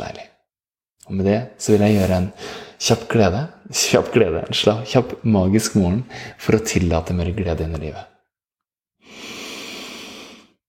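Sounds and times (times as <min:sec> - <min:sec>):
speech: 0:01.1 - 0:08.1
deep breath: 0:02.4 - 0:02.8, 0:06.1 - 0:06.4, 0:09.0 - 0:10.6.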